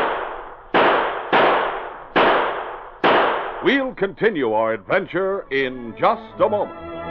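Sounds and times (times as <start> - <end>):
gunshots from men shooting: 0.0 - 3.9
speech: 3.6 - 6.9.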